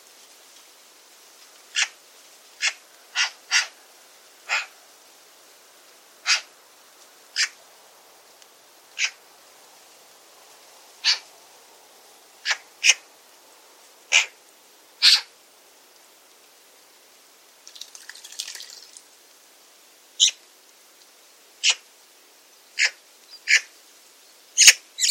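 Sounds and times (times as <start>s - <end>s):
faint scratchy rustle: 0.0s - 24.5s
bird calls with brief high sharp notes: 2.6s - 3.8s, 4.5s - 4.8s, 6.2s - 6.5s, 7.3s - 7.6s, 9.0s - 9.2s, 11.0s - 11.3s, 12.4s - 13.0s, 14.1s - 14.4s, 15.0s - 15.3s, 20.2s - 20.4s, 21.6s - 21.8s, 22.8s - 23.8s, 24.6s - 25.1s.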